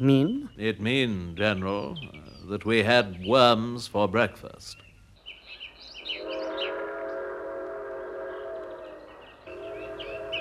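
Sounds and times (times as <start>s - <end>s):
speech: 0.0s - 4.8s
birds chirping: 0.0s - 10.3s
Japanese steam train whistle blowing a multi-toned blast: 6.2s - 10.3s.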